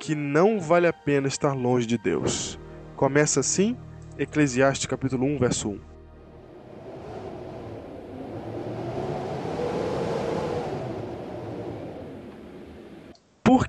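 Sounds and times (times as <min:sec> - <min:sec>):
speech: 0:00.0 - 0:05.9
wind whoosh sound effect with a deep rumbling undertone: 0:05.4 - 0:13.1.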